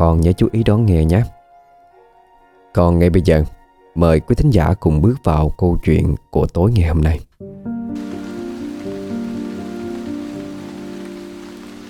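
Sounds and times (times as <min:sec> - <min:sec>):
speech: 0:00.0 - 0:01.4, 0:02.8 - 0:08.1
heavy rain pouring at night on a poor hamlet in newly cleared land: 0:07.9 - 0:11.8.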